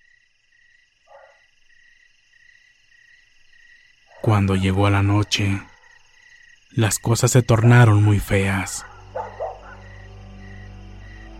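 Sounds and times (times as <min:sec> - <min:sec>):
dog barking: 0:01.1 - 0:01.5, 0:04.1 - 0:04.4, 0:08.7 - 0:10.1
speech: 0:04.2 - 0:05.7, 0:06.7 - 0:08.9.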